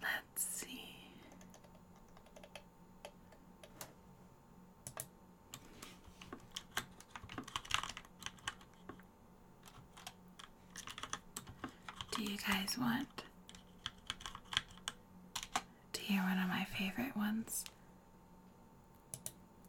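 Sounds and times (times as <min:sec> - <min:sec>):
faint low hum: 0:00.0 - 0:19.6
typing on a loud computer keyboard: 0:01.3 - 0:03.9, 0:04.8 - 0:05.7, 0:06.4 - 0:09.0, 0:09.6 - 0:12.6, 0:13.5 - 0:15.7, 0:19.1 - 0:19.4
speech: 0:12.4 - 0:13.1, 0:16.1 - 0:17.8.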